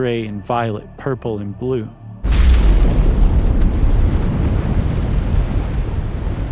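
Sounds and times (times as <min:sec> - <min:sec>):
speech: 0:00.0 - 0:02.0
massive atomic bomb explosion rumble: 0:02.2 - 0:06.4.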